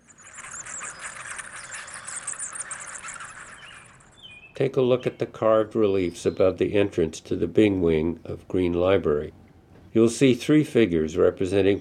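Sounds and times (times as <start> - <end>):
Mexican free-tailed bats roosting in library eaves giving squeaky chirps and twitters: 0.0 - 5.1
speech: 4.6 - 9.4, 10.0 - 11.8.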